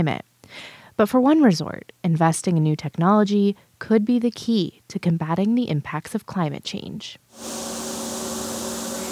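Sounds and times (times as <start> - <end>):
speech: 0.0 - 7.8
low motor hum of a snowmaking machine: 7.4 - 9.1
snowmaking machine blowing artificial snow with fan roar and airy hiss: 7.4 - 9.1.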